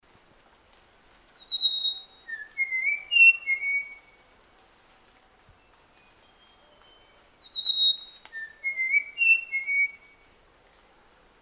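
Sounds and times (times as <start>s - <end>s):
Papuan logrunner whistling: 1.4s - 4.1s, 7.4s - 10.1s.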